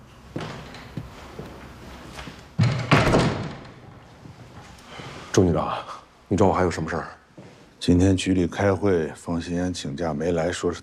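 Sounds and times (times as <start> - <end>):
door being shut: 2.6 - 3.9
speech: 5.4 - 7.2, 7.8 - 10.8.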